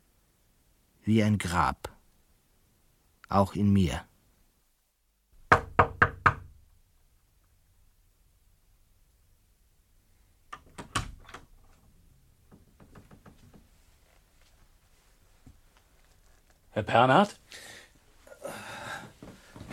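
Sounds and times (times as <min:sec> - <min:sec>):
speech: 0:01.0 - 0:01.9, 0:03.3 - 0:04.1, 0:16.8 - 0:17.6
knocking on a door: 0:05.4 - 0:06.6.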